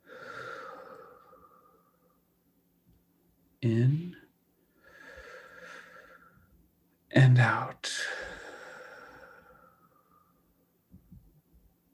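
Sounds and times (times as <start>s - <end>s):
deep deliberate breath during a guided meditation: 0.0s - 2.2s, 4.6s - 6.6s, 7.9s - 10.4s
speech: 3.6s - 4.2s.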